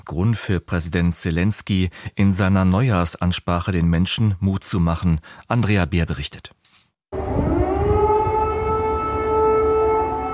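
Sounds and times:
speech: 0.1s - 6.6s
air raid warning siren wailing: 7.1s - 10.3s.

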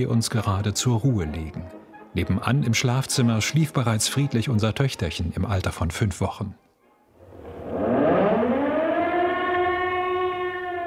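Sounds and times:
speech: 0.0s - 6.6s
faint low rumble: 7.2s - 8.9s
air raid siren winding up into a steady wail: 7.2s - 10.8s.

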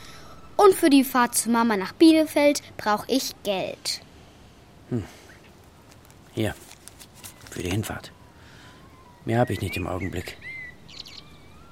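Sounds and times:
soft outdoor hum: 0.0s - 11.6s
speech: 0.6s - 4.1s, 4.9s - 5.2s, 6.4s - 6.7s, 7.6s - 8.2s, 9.2s - 10.5s
common blackbird singing: 8.9s - 11.6s.

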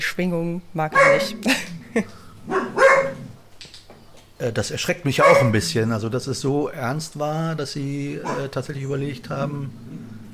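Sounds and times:
speech: 0.1s - 2.7s, 4.4s - 10.1s
dog barking: 1.0s - 1.5s, 2.4s - 3.4s, 5.2s - 5.6s, 8.2s - 8.6s
laughter: 1.4s - 2.3s.

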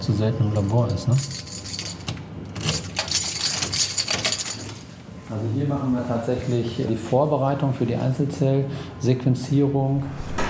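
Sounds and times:
speech: 0.1s - 1.5s, 5.3s - 10.2s
bunch of keys jangling at a clinic laboratory door: 0.9s - 4.9s.

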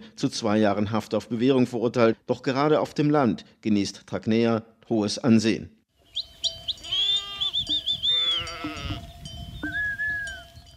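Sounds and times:
speech: 0.2s - 5.8s
faint bell tinkle: 6.5s - 10.7s
sheep bleating: 6.8s - 9.1s.

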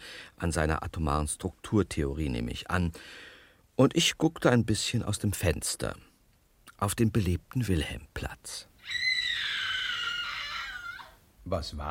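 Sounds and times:
speech: 0.4s - 6.1s, 6.8s - 9.0s, 11.4s - 11.8s
person screaming: 8.8s - 11.2s.

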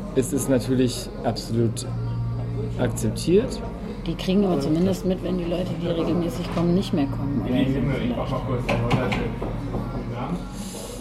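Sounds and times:
murmur of voices: 0.0s - 10.9s
speech: 0.2s - 2.1s, 2.7s - 10.7s
small schnapps glasses knocking on a wooden bar counter: 8.6s - 10.0s.

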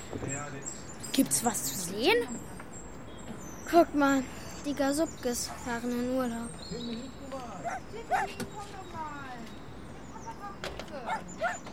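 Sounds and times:
speech: 0.1s - 2.6s, 3.7s - 9.5s
several dogs yipping and whimpering: 7.6s - 8.4s, 11.1s - 11.7s.

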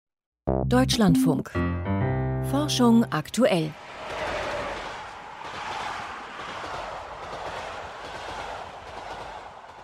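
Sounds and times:
speech: 0.7s - 1.9s, 2.5s - 3.8s
train rushing past: 3.7s - 9.8s.

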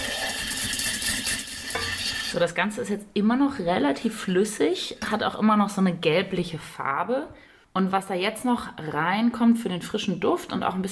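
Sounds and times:
vigorous stirring of baking soda powder into an oil mixture for homemade deodorant: 0.0s - 2.4s
speech: 2.3s - 10.8s.

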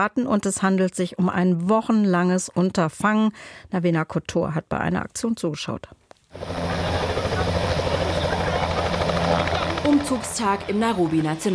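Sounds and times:
speech: 0.0s - 6.8s, 9.9s - 11.5s
helicopter rotor throbbing whir overhead: 6.3s - 11.5s.

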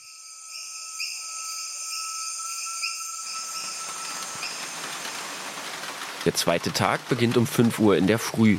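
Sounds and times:
frogs croaking in rainforest at night: 0.0s - 7.2s
broad hiss like rain or rushing water: 3.2s - 7.4s
speech: 6.2s - 8.5s.

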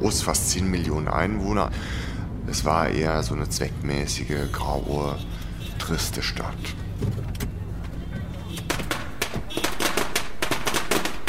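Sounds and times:
speech: 0.0s - 7.4s
string of Chinese firecrackers exploding in front of a business hotel entrance: 8.7s - 11.2s.

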